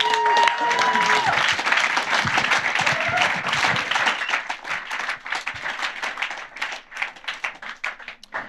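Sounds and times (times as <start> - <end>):
audience applause: 0.0 - 8.4
crowd whistles: 3.9 - 4.6.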